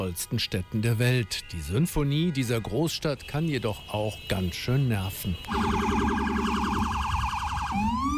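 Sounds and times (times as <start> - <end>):
speech: 0.0 - 6.7
police and ambulance sirens wailing in New York: 5.4 - 8.1.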